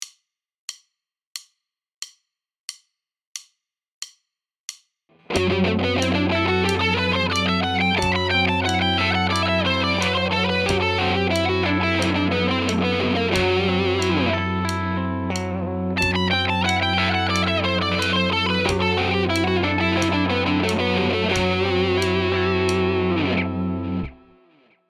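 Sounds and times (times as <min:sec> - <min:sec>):
guitar in locrio mode: 0:05.1 - 0:24.8.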